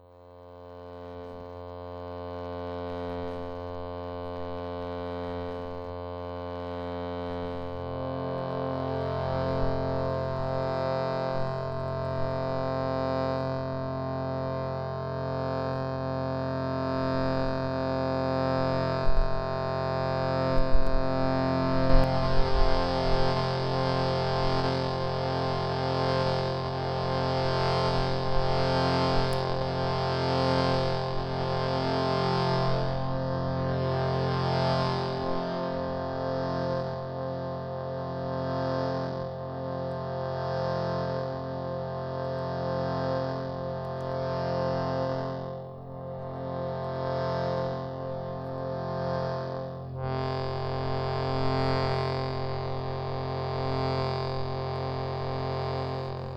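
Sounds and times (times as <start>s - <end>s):
shruti box in F: 0.7s - 56.3s.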